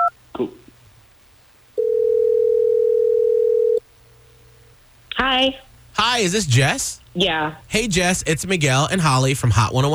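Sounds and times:
speech: 0.4 - 0.6, 5.4 - 9.9
telephone ringing tone over the line: 1.8 - 3.8.

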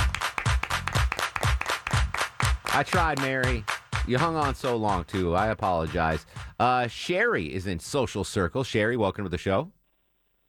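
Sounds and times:
hands clapping in a quick steady rhythm: 0.0 - 6.7
speech: 2.8 - 9.8.

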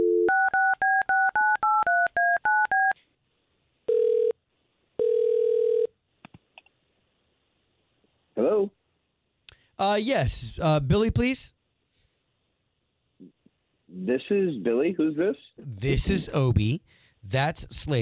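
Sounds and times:
long electronic telephone ringing tones on the line: 0.0 - 3.0, 3.9 - 4.4, 5.0 - 5.9
touch-tone telephone dialing beeps: 0.0 - 3.0
speech: 9.8 - 11.6, 14.1 - 18.0.

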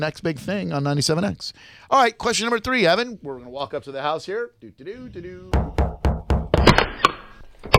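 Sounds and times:
speech: 0.0 - 5.8
firm knocking on a door: 5.5 - 6.6.

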